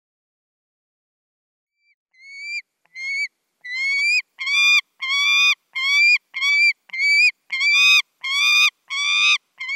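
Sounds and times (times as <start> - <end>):
saker falcon calling with whining notes: 2.2 - 9.7.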